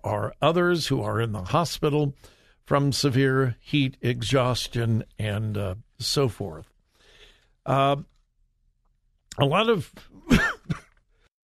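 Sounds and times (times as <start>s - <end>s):
speech: 0.0s - 6.7s, 7.6s - 8.1s, 9.4s - 10.8s
person coughing: 10.2s - 11.0s.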